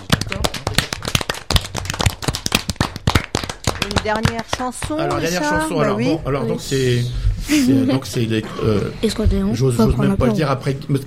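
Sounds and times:
audience applause: 0:00.0 - 0:05.4
speech: 0:03.9 - 0:11.0.

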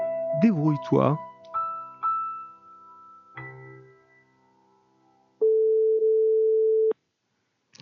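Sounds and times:
speech: 0:00.4 - 0:01.3
telephone ringback tone of an outgoing call: 0:05.4 - 0:06.9.

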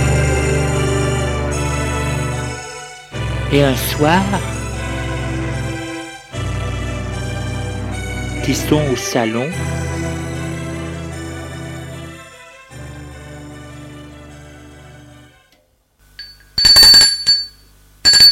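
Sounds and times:
low steady droning tones: 0:00.0 - 0:15.4
speech: 0:03.5 - 0:04.5, 0:08.5 - 0:09.9
doorbell ringing at the front door of a home: 0:16.2 - 0:18.2.

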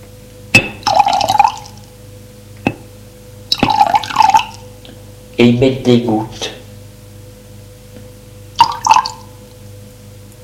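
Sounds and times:
glass clink of carafe on glass: 0:00.5 - 0:01.5
water poured from a carafe into a glass: 0:00.8 - 0:01.8, 0:03.5 - 0:04.6, 0:08.6 - 0:09.3
speech: 0:05.4 - 0:06.6.

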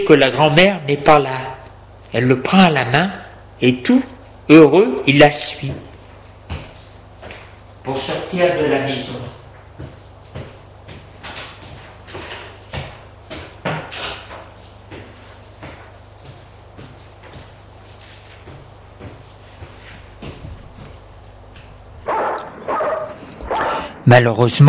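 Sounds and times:
speech: 0:00.0 - 0:01.5, 0:02.1 - 0:05.9, 0:07.9 - 0:09.3, 0:24.1 - 0:24.6
steady low hum: 0:00.0 - 0:24.6
dogs barking menacingly: 0:22.0 - 0:24.0.

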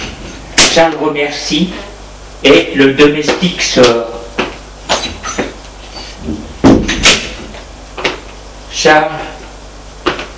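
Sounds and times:
speech: 0:00.8 - 0:04.2, 0:08.8 - 0:09.3
door scraping swing: 0:04.9 - 0:07.5.

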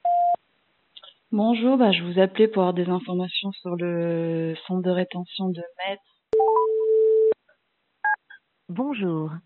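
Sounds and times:
speech: 0:01.3 - 0:06.1, 0:08.7 - 0:09.4
steady electronic telephone tone between voicemail calls: 0:06.4 - 0:07.4
two-pitch voicemail beep: 0:06.4 - 0:07.4.

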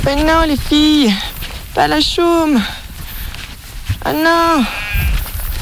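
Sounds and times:
speech: 0:00.1 - 0:02.8, 0:04.0 - 0:04.8
ewes bleating: 0:04.0 - 0:05.6.

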